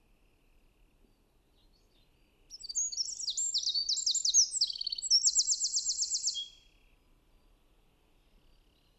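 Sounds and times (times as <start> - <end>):
Eurasian wren Troglodytes troglodytes song of high trills and rattle: 1.6 - 6.8.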